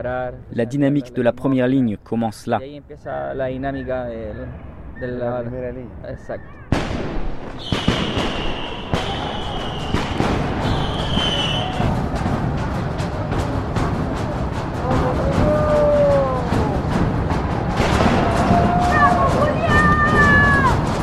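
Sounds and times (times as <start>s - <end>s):
speech: 0.0s - 8.4s
tear gas canisters fired at protesters: 6.7s - 13.8s, 16.9s - 21.0s
high whistling tone: 7.6s - 11.9s
roar of crowd at a street protest: 7.6s - 21.0s.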